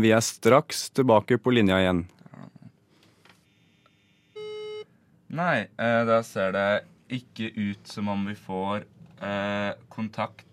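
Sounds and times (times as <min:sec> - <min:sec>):
speech: 0:00.0 - 0:02.2, 0:05.3 - 0:10.5
electronic telephone beep from an incoming call: 0:04.3 - 0:04.9.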